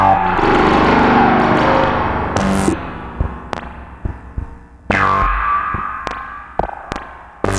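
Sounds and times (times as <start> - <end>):
Moog synthesizer spring sound: 0.2 - 7.5.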